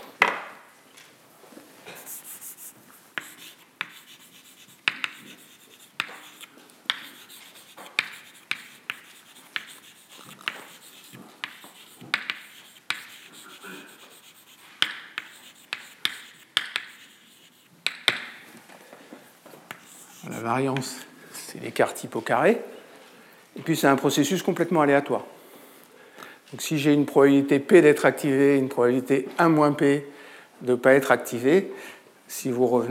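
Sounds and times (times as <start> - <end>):
handwriting scratching strokes writing out a variance formula: 2.0 - 17.7, 19.7 - 20.4
speech: 20.4 - 22.7, 23.7 - 25.4, 26.5 - 32.9.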